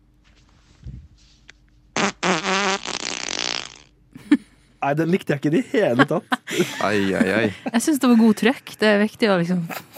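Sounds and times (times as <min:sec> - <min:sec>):
recorded fart played back with a buzzy wavering pitch: 0:02.0 - 0:04.0
speech: 0:04.8 - 0:09.8
laughter: 0:05.6 - 0:08.8.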